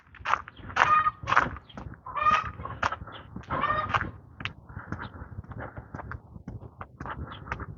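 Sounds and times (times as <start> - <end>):
chickens clucking and squawking: 0.8 - 4.2.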